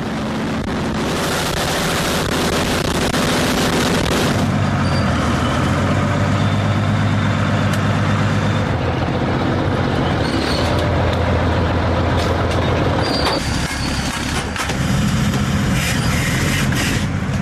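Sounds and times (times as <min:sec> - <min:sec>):
45-ton self-propelled artillery vehicle engine roaring as it drives: 0:00.0 - 0:17.3.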